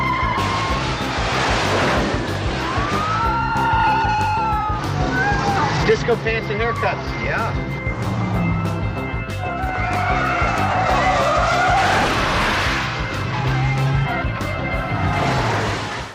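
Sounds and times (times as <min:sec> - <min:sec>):
car tires skidding and squealing in a movie chase scene: 0:00.0 - 0:16.1
roaring car engines in a movie chase scene: 0:00.0 - 0:16.1
speech: 0:05.9 - 0:07.8.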